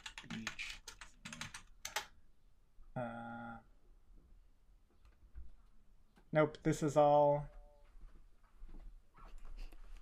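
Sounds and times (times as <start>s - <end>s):
loud clacky computer keyboard typing: 0.0s - 2.2s
speech: 6.3s - 7.6s.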